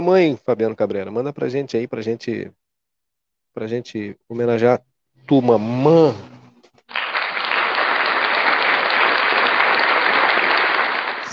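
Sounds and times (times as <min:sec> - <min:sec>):
speech: 0:00.0 - 0:02.6, 0:03.6 - 0:06.3
many hands clapping: 0:06.8 - 0:11.3.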